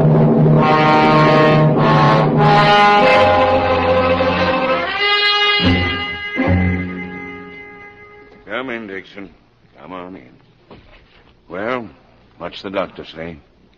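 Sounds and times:
police car horn tones: 0:00.6 - 0:08.4
speech: 0:12.5 - 0:13.5.

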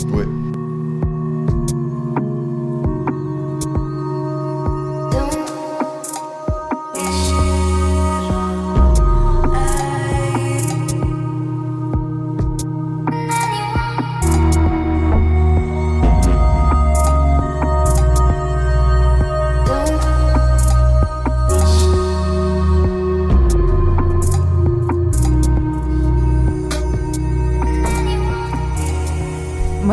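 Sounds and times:
instrumental electronic music with deep bass and synth tones: 0:00.0 - 0:29.9.

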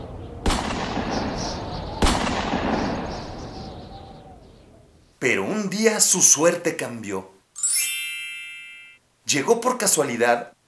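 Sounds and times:
steady hiss: 0:00.0 - 0:10.6
hunters' gunshots in winter snow and ice: 0:00.4 - 0:03.6
speech: 0:05.2 - 0:07.4, 0:09.3 - 0:10.6.

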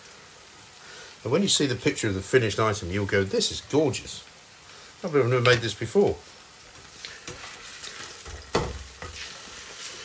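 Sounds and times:
tuna frying in a pan: 0:00.0 - 0:10.0
speech: 0:01.2 - 0:04.3, 0:05.0 - 0:06.3
stirring scrapes in a pan: 0:06.8 - 0:10.0.

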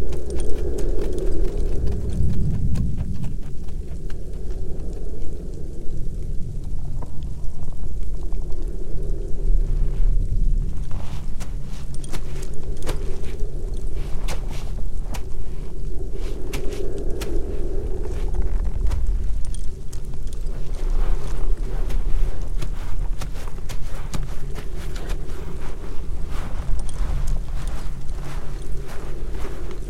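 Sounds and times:
dry crunching steps: 0:00.0 - 0:29.8
low rumble in a winter forest: 0:00.0 - 0:29.8
soft hum: 0:00.0 - 0:29.8.

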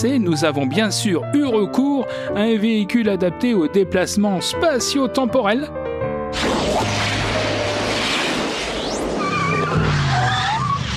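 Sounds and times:
speech: 0:00.0 - 0:06.4
sports car tires screeching in a skid: 0:06.4 - 0:10.9.

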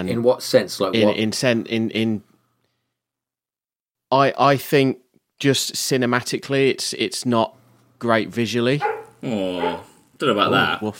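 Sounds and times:
speech: 0:00.0 - 0:02.3, 0:04.1 - 0:10.9
dog growling: 0:08.8 - 0:10.1.

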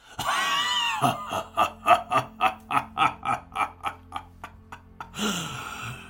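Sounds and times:
deep growling demonic voice cackling: 0:00.2 - 0:06.0
shrieking wail: 0:00.3 - 0:01.2.

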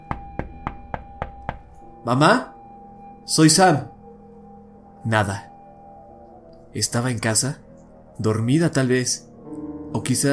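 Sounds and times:
loud sharp knocks on the window of a house: 0:00.1 - 0:01.8
speech: 0:02.0 - 0:02.5, 0:03.2 - 0:03.9, 0:05.0 - 0:05.5, 0:06.8 - 0:07.6, 0:08.2 - 0:09.3, 0:09.9 - 0:10.3.

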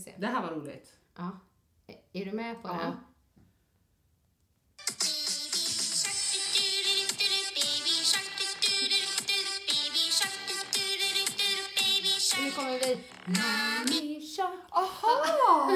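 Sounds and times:
speech: 0:00.1 - 0:03.1, 0:12.4 - 0:15.7
children's song playing: 0:04.8 - 0:15.7.

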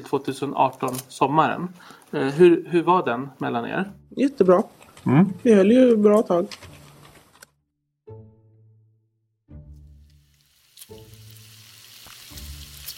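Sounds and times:
speech: 0:00.0 - 0:06.7
pork sizzling in a frying pan: 0:10.0 - 0:12.9.

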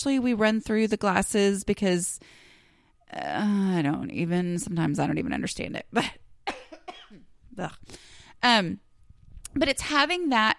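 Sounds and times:
speech: 0:00.0 - 0:02.4, 0:03.1 - 0:06.2, 0:07.1 - 0:08.8, 0:09.5 - 0:10.5
person coughing: 0:06.4 - 0:07.3.

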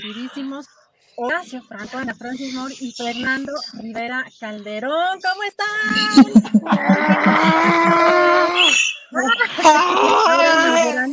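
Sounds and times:
speech: 0:00.1 - 0:11.1
laughter: 0:06.0 - 0:08.6
theatrical wailing scream from a single voice: 0:06.7 - 0:08.8, 0:09.6 - 0:10.8.

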